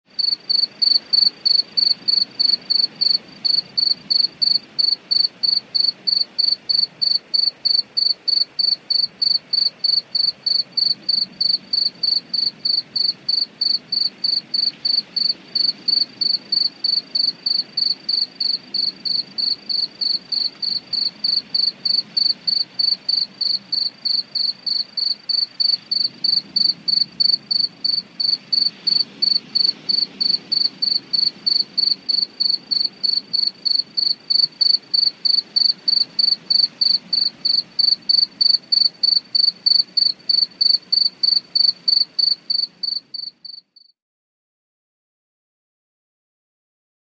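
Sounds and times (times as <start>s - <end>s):
crickets chirping: 0.1s - 43.9s
cicadas buzzing: 0.2s - 43.6s.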